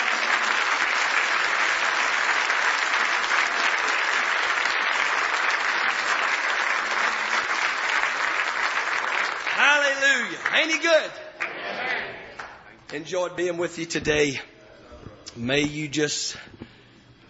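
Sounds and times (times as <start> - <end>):
church audience clapping in praise: 0.0 - 13.1
speech: 10.6 - 11.3, 12.9 - 14.5, 15.4 - 16.6.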